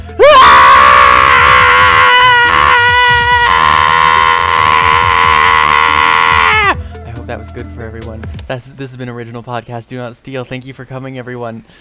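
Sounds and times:
people screaming at a piercing pitch: 0.0 - 8.5
speech: 7.6 - 11.7.

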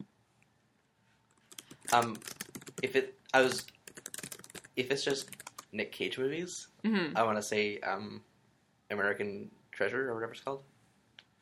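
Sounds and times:
typing on a computer keyboard: 1.3 - 5.7
speech: 1.9 - 3.7, 4.8 - 8.3, 8.9 - 10.7.

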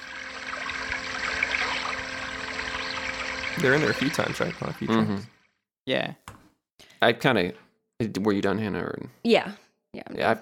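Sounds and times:
water trickling: 0.0 - 5.6
speech: 3.6 - 6.2, 7.0 - 10.4.

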